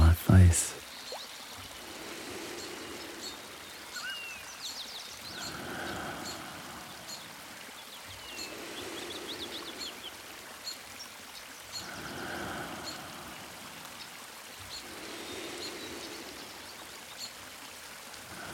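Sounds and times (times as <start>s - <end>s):
steady rushing wash like a stream: 0.0s - 18.5s
speech: 0.5s - 0.8s
birds chirping and trilling in a forest in the morning: 2.4s - 13.0s, 14.0s - 17.4s.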